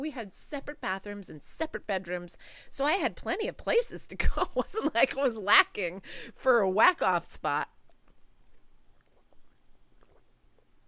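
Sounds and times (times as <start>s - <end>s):
speech: 0.0s - 7.8s
low hiss: 0.0s - 10.8s
sipping water: 7.8s - 10.8s
faint swallow: 7.9s - 10.8s.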